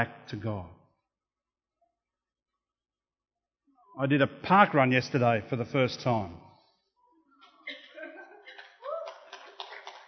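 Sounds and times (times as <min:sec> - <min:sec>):
speech: 0:00.0 - 0:00.8, 0:04.0 - 0:06.4
audience chuckling: 0:07.5 - 0:09.4
audience applause: 0:08.5 - 0:10.0.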